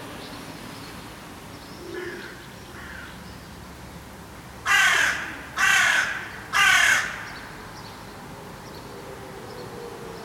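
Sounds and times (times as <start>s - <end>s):
carrion crow Corvus corone giving harsh rasping caws: 1.9s - 3.2s, 4.6s - 7.4s.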